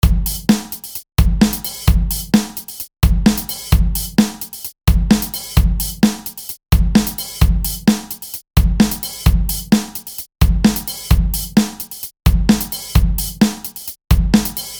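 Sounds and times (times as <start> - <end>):
dry drums: 0.0 - 14.7.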